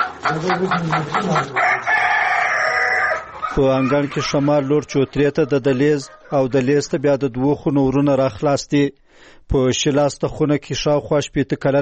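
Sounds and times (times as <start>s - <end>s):
chickens and roosters scratching among leaves and twigs: 0.0s - 3.2s
rooster crowing in a house courtyard in Dhaka: 0.0s - 6.4s
chickens clucking in a house courtyard in Dhaka: 0.0s - 8.0s
speech: 0.3s - 1.9s, 3.6s - 11.7s.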